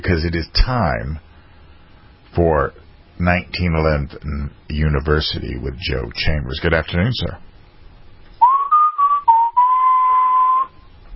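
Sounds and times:
speech: 0.0 - 1.3, 2.4 - 7.5
person whistling a tune: 8.4 - 10.9.

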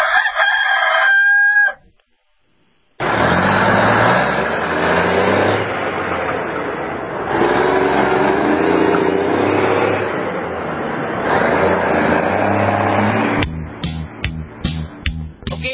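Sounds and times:
loud rooster crowing: 0.0 - 1.9
rumbling engine roar driving along the road: 3.0 - 15.4.

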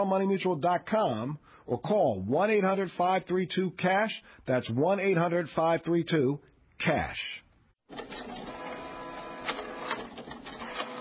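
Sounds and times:
speech: 0.0 - 8.5
inkjet printer printing: 7.9 - 10.9.

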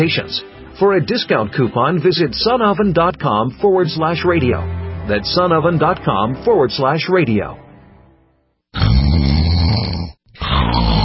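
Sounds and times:
speech: 0.0 - 7.6
person snoring: 8.8 - 11.0.

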